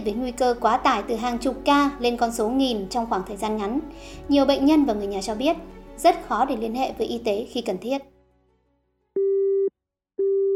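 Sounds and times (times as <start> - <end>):
speech: 0.0 - 8.1
telephone call tone beeps: 9.2 - 10.5.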